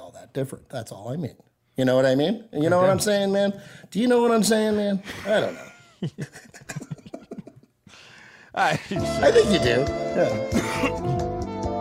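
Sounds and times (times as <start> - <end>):
speech: 0.4 - 6.9, 8.6 - 11.3
laughter: 5.0 - 7.7
person coughing: 10.5 - 11.2.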